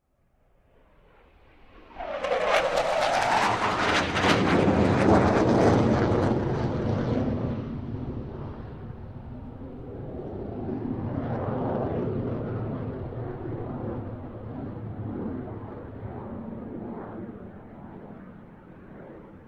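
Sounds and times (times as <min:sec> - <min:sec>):
F-16 jet fighter passing overhead: 0:00.5 - 0:19.4.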